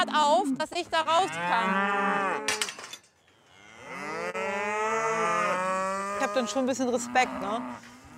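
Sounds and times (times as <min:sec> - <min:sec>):
speech: 0:00.0 - 0:02.7, 0:06.2 - 0:08.0
herd of cattle with a one-tonne bull mooing: 0:00.8 - 0:02.6, 0:03.5 - 0:08.1.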